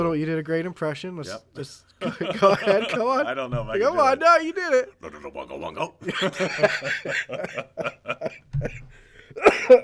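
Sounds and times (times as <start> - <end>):
speech: 0.1 - 9.8
people chuckling: 2.0 - 3.4, 6.0 - 9.8
sharp cough: 9.4 - 9.8.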